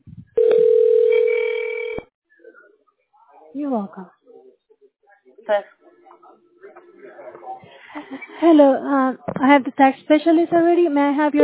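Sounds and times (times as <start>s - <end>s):
telephone tone while dialing a call: 0.4s - 2.0s
speech: 3.6s - 4.2s, 5.5s - 5.8s, 8.1s - 11.4s.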